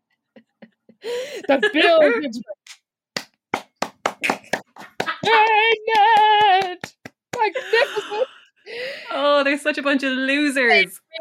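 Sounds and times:
laughter: 0:00.4 - 0:02.3, 0:04.3 - 0:06.5, 0:07.4 - 0:08.4
speech: 0:01.0 - 0:02.6, 0:05.2 - 0:11.1
slow hand clapping: 0:03.2 - 0:07.5.

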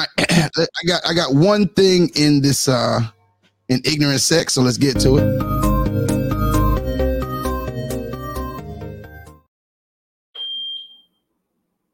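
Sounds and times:
speech: 0:00.4 - 0:05.8
short burst of bright electronic melody: 0:05.0 - 0:09.5.

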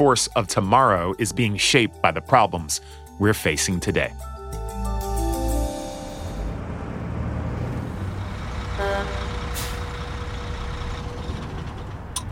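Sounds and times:
speech: 0:00.0 - 0:04.4
heavy truck engine rumbling and revving in a truck yard: 0:05.2 - 0:12.2
air brakes hissing: 0:09.2 - 0:11.7.

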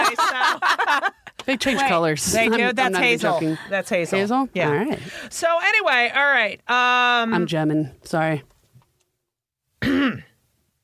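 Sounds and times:
laughter: 0:00.0 - 0:02.8
speech: 0:01.5 - 0:08.5, 0:09.8 - 0:10.3
throat clearing: 0:09.8 - 0:10.4.

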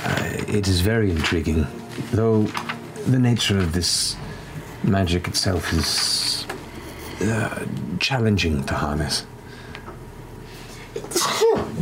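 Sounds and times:
speech: 0:00.5 - 0:04.2, 0:04.8 - 0:06.3, 0:07.2 - 0:09.3
sneeze: 0:11.1 - 0:11.8.

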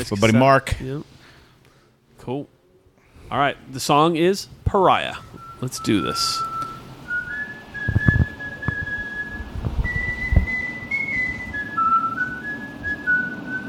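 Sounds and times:
speech: 0:00.0 - 0:01.1, 0:02.2 - 0:02.6, 0:03.3 - 0:06.6
man whistling a wandering tune: 0:05.2 - 0:13.6
low thumps: 0:07.7 - 0:11.6.

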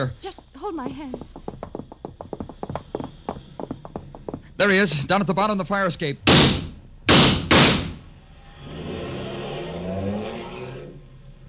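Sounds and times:
speech: 0:00.0 - 0:01.4, 0:04.6 - 0:06.3
sharp slams: 0:06.3 - 0:08.1
car engine starting and revving as the vehicle accelerates away: 0:08.2 - 0:11.4.

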